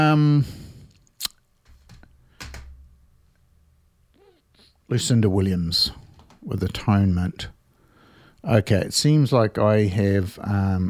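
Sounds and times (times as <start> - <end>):
speech: 0.1 - 0.6, 4.9 - 7.6, 8.4 - 10.8
sharp computer keyboard clicks: 1.7 - 2.8.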